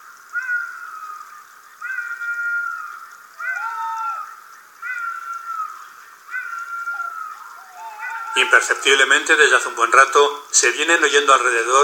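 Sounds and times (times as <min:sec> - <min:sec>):
fox barking: 0:01.8 - 0:09.8
speech: 0:08.4 - 0:11.8.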